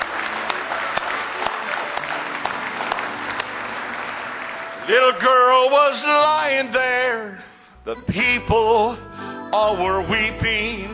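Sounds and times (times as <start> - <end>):
crowd applauding indoors: 0.0 - 6.7
speech: 4.9 - 10.9.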